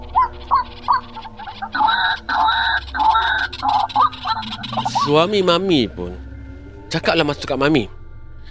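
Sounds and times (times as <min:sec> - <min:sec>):
man imitating white-breasted waterhen calls behind a house kitchen: 0:00.1 - 0:05.3
speech: 0:05.1 - 0:06.3, 0:06.9 - 0:08.0.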